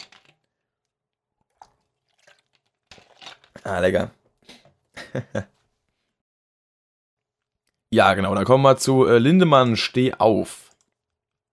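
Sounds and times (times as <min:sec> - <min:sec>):
person sipping and swallowing water: 0:01.4 - 0:03.6
speech: 0:03.6 - 0:04.2, 0:05.2 - 0:05.6, 0:08.0 - 0:10.6
laughter: 0:05.0 - 0:05.5.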